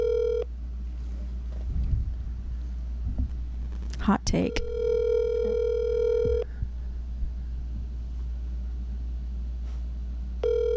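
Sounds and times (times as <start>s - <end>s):
telephone ringback tone of an outgoing call: 0.0s - 0.5s, 4.5s - 6.5s, 10.4s - 10.7s
low hum and telephone line rumble: 0.0s - 10.7s
speech: 4.0s - 4.7s.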